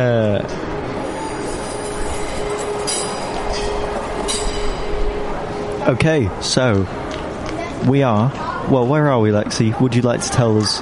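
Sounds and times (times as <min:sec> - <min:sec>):
train rumbling past at a railway site: 0:00.6 - 0:07.6
thin metallic squeal of rails: 0:01.0 - 0:05.7
speech: 0:05.8 - 0:07.1, 0:07.8 - 0:10.8.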